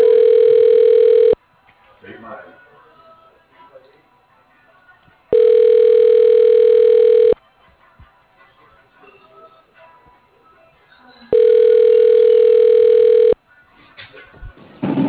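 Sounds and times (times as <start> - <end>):
telephone line ringing tone heard through a handset: 0.0 - 1.4, 5.3 - 7.4, 11.3 - 13.4.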